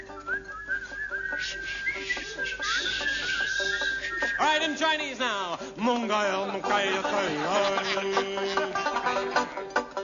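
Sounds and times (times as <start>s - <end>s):
several people whistling a tune together: 0.0s - 4.8s
laughter: 1.4s - 4.6s, 6.0s - 9.7s
speech: 4.4s - 9.8s.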